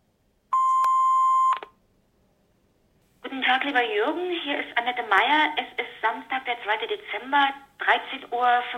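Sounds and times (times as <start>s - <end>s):
answering machine long electronic beep: 0.6s - 1.7s
speech: 3.6s - 8.7s.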